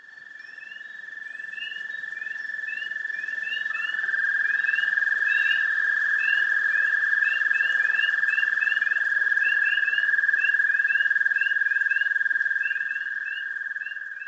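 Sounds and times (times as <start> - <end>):
spring peepers and other frogs chorusing at a pond: 0.0 - 14.2.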